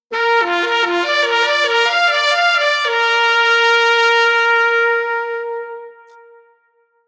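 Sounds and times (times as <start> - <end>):
horn section of trumpet and alto saxophone in unison: 0.1 - 7.0.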